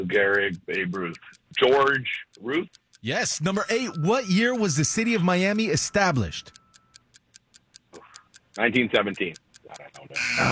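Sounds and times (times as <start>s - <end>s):
speech: 0.0s - 6.6s, 8.6s - 10.5s
quiz countdown clock ticking: 0.0s - 10.5s.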